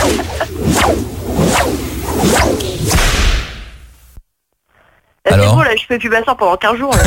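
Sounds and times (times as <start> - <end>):
whip being swung and cracked: 0.0 - 3.6
speech: 5.9 - 7.0.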